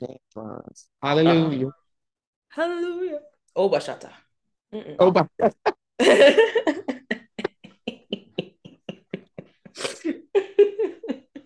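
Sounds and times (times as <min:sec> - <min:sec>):
speech: 0:00.0 - 0:01.8, 0:02.5 - 0:07.0
laughter: 0:06.0 - 0:11.4
wet sniffling and snorting from a cold: 0:09.6 - 0:10.2
person sneezing from a cold: 0:09.8 - 0:10.2.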